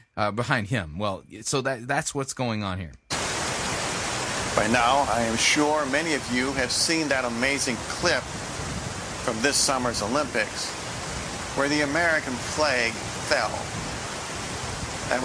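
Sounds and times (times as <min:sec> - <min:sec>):
speech: 0:00.2 - 0:03.0, 0:04.6 - 0:08.5, 0:09.2 - 0:10.8, 0:11.6 - 0:13.9
swiftly rushing brook water: 0:03.1 - 0:15.2.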